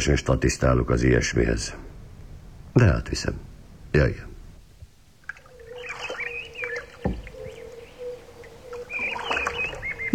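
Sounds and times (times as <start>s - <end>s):
speech: 0.0s - 1.9s, 2.8s - 4.3s
faint birdsong: 0.0s - 10.1s
rowing boat oars creaking on a lake: 5.2s - 10.1s
wooden knock: 7.0s - 7.6s.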